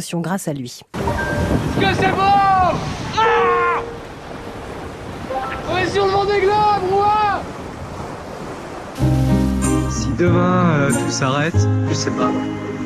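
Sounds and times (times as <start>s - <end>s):
speech: 0.0s - 3.5s, 5.9s - 7.5s, 10.2s - 12.8s
wind roaring around a racing sailboat at sea: 1.0s - 10.2s
waves surging around a racing sailboat at sea: 1.0s - 11.5s.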